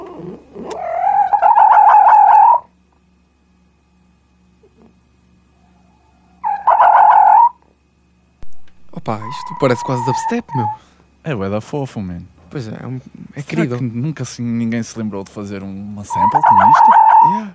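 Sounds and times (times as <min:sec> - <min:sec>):
fox letting out loud wavering high-pitched cries: 0:00.0 - 0:02.7, 0:06.4 - 0:07.6, 0:09.0 - 0:10.9, 0:16.1 - 0:17.5
speech: 0:09.1 - 0:17.5.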